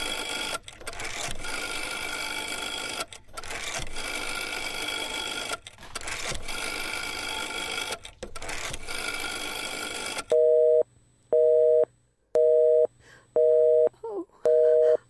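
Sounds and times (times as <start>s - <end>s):
telephone busy signal: 10.3s - 10.8s, 11.4s - 13.9s, 14.5s - 15.0s.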